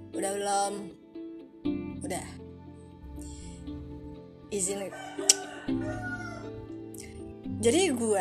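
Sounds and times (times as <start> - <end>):
speech: 0.2 - 1.0, 4.5 - 6.1, 7.6 - 8.1
rooster crowing: 4.9 - 6.7.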